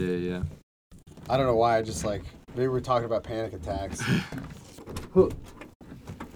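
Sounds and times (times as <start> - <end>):
speech: 0.0 - 0.6, 1.2 - 5.6
door opening with clunk and scrape: 4.0 - 6.3.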